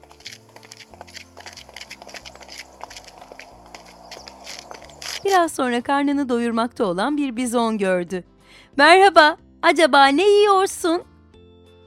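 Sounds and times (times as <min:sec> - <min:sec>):
small panda's soft footsteps walking: 0:00.0 - 0:05.4
speech: 0:05.2 - 0:11.1.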